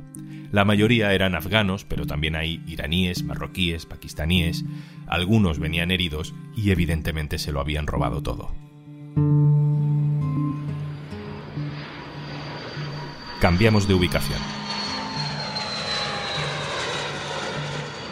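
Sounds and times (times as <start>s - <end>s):
speech: 0.5s - 8.6s, 9.2s - 9.5s, 13.4s - 14.7s
airplane engine carrying immigrants from Florida to Martha's Vineyard roaring: 9.8s - 18.1s.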